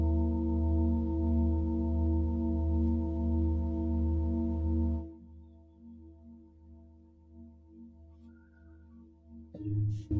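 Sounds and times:
singing bowl humming with deep drone and overtones: 0.0 - 5.8.

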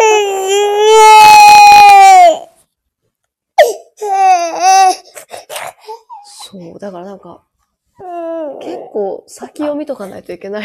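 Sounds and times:
baby crying: 0.0 - 2.5, 3.6 - 6.4, 8.0 - 9.0
speech: 6.8 - 10.6.

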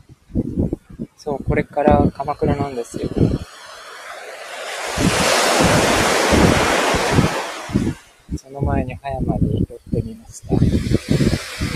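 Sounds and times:
gusty wind buffeting the microphone: 0.0 - 11.7
speech: 1.2 - 3.5, 7.8 - 11.5
ocean waves rushing onto the shore in Hayama Japan: 1.4 - 8.6, 10.4 - 11.7.

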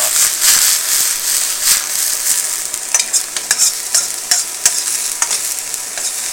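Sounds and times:
bean sprouts stir-frying in a wok: 0.0 - 6.3.

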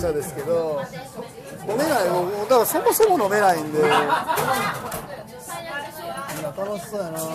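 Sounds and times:
speech: 0.0 - 5.3, 6.6 - 7.3
crowd chatter in a busy standing bar in Kobe Japan: 0.0 - 7.3
people chuckling: 3.8 - 4.9.

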